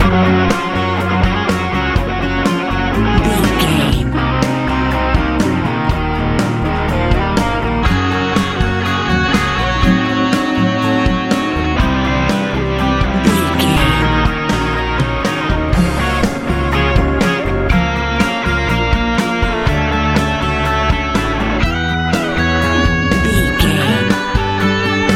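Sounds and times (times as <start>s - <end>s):
big warm hopeful easy rock music: 0.0s - 25.1s.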